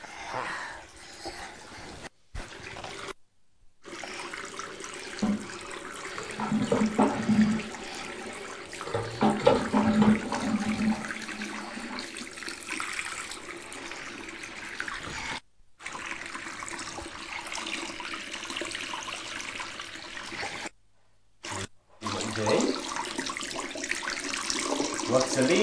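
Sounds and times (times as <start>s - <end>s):
water running from a tap: 2.4s - 3.2s, 3.8s - 20.7s, 21.4s - 25.6s.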